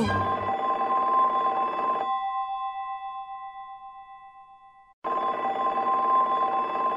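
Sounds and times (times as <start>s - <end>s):
old-fashioned telephone bell ringing: 0.0s - 6.9s.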